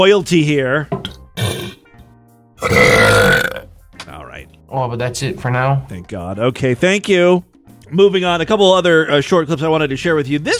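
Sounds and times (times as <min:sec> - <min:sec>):
speech: 0:00.0 - 0:01.0, 0:04.7 - 0:10.5
loud drawn-out belches: 0:01.4 - 0:01.8, 0:02.6 - 0:03.7.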